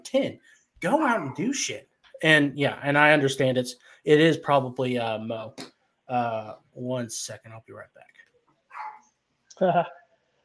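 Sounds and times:
speech: 0.0s - 8.2s, 9.6s - 10.0s
small dog yapping: 8.7s - 9.0s.

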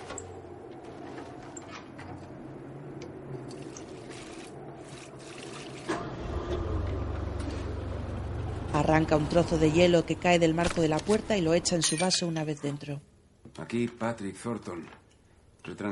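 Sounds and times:
generator engine droning: 0.0s - 11.7s
petrol poured into a generator: 3.5s - 6.2s
speech: 8.8s - 15.0s, 15.7s - 15.9s.

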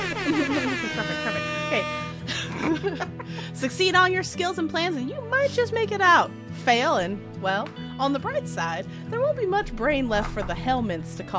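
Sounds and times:
air horn blast: 0.0s - 2.3s
laughter: 0.0s - 3.6s
speech: 2.8s - 11.3s.

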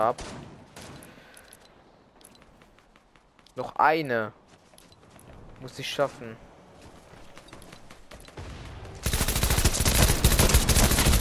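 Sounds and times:
speech: 0.0s - 0.5s, 3.6s - 4.4s, 5.6s - 6.4s
video game automatic gunfire: 8.1s - 11.1s.

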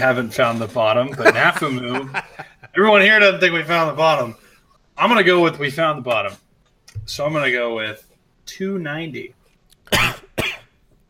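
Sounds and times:
speech: 0.0s - 4.4s, 5.0s - 10.2s
laughter: 1.0s - 3.0s
person coughing: 9.9s - 11.0s.

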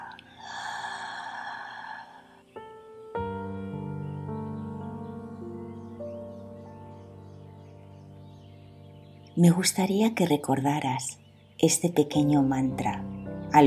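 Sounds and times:
deep breath in through the nose and out through the mouth: 0.0s - 2.6s
sustained gentle musical tones: 0.0s - 13.6s
speech: 9.4s - 13.6s.

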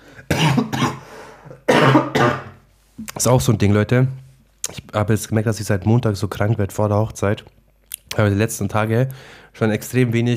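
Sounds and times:
person coughing forcefully: 0.2s - 2.6s
speech: 3.2s - 7.6s, 8.2s - 10.3s.

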